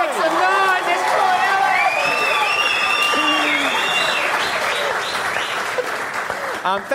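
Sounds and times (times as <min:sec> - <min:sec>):
audience applause: 0:00.0 - 0:06.9
faint whoops and voices: 0:00.7 - 0:04.9
speech: 0:06.7 - 0:06.9.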